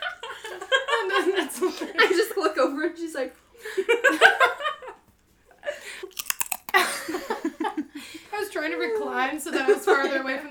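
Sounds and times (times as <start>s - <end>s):
laughter: 0.0s - 2.4s, 3.6s - 5.0s, 6.8s - 8.0s
speech: 1.2s - 4.5s, 8.7s - 10.4s
person biting and chewing a crisp cracker: 6.0s - 7.0s.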